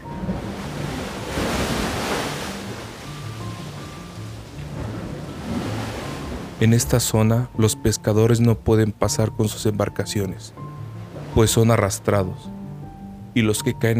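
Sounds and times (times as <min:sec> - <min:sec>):
heavy sea waves crashing against caves: 0:00.0 - 0:07.6, 0:10.5 - 0:12.3
speech: 0:06.6 - 0:10.8, 0:11.4 - 0:12.6, 0:13.3 - 0:13.9.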